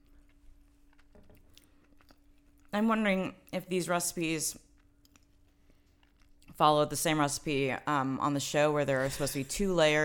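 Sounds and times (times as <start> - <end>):
crunchy chewing of food: 0.0 - 2.8, 4.5 - 6.6
faint steady hum: 0.0 - 10.0
speech: 2.8 - 4.7, 6.6 - 10.0.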